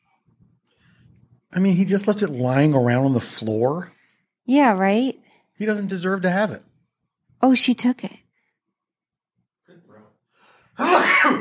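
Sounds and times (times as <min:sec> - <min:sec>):
speech: 0:01.5 - 0:06.7, 0:07.4 - 0:08.2, 0:10.8 - 0:11.3
person sneezing: 0:10.7 - 0:11.3.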